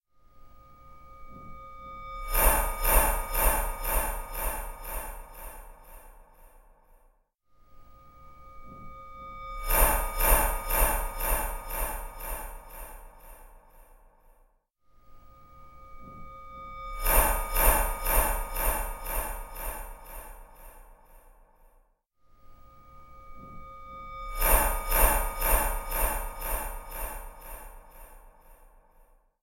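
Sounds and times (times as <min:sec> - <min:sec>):
horror sound effects: 0:02.2 - 0:06.6, 0:09.6 - 0:13.9, 0:17.0 - 0:21.2, 0:24.3 - 0:28.6.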